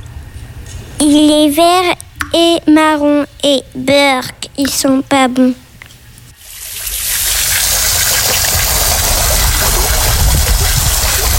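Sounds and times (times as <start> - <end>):
speech: 1.0 - 5.6
water jet spraying from a water dragon: 6.4 - 11.3.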